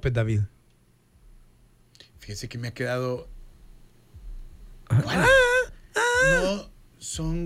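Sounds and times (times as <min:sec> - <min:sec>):
speech: 0:00.0 - 0:00.6, 0:02.2 - 0:03.4, 0:04.9 - 0:05.4, 0:06.2 - 0:07.4
faint low hum: 0:00.0 - 0:07.4
wordless high female vocals wailing from a song: 0:04.9 - 0:06.6.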